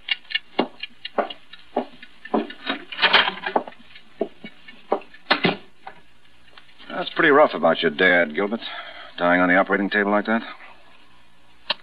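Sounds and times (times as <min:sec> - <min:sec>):
clock ticking: 0:00.0 - 0:05.4
speech: 0:07.2 - 0:10.6.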